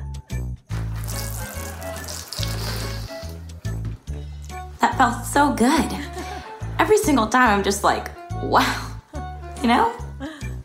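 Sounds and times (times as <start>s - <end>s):
bidet spraying water: 0.8s - 3.4s
speech: 4.8s - 6.0s, 6.8s - 8.8s, 9.6s - 10.0s.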